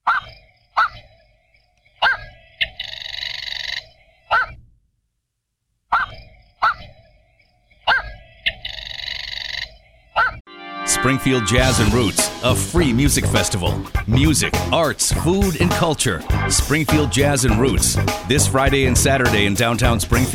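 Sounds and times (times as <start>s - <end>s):
black-crowned night heron barking squawks and harsh buzzy rasps: 0.0s - 1.2s, 1.9s - 4.6s, 5.9s - 7.1s, 7.8s - 10.4s
speech: 11.0s - 20.3s.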